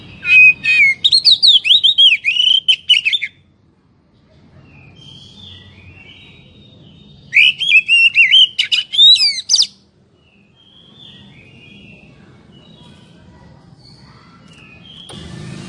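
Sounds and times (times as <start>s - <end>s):
Oriental magpie-robin song: 0.0s - 3.4s, 4.6s - 15.1s.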